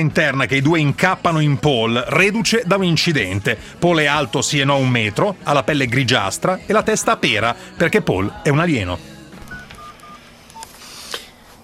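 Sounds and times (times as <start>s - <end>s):
speech: 0.0s - 9.1s
telephone keypad dialing tones: 9.5s - 10.7s.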